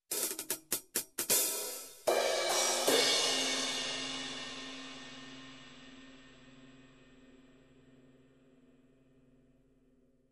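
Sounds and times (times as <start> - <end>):
overhead drum fill: 0.0 - 4.8
hi-hat: 0.1 - 4.3.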